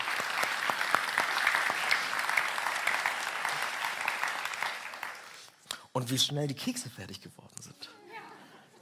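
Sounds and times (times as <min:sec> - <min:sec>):
audience clapping in a church: 0:00.0 - 0:05.6
speech: 0:06.0 - 0:07.9.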